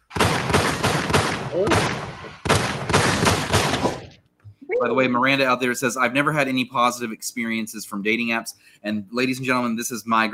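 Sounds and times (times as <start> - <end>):
gunshot sound effect volley: 0.0 - 4.2
speech: 1.6 - 2.5, 4.8 - 10.3.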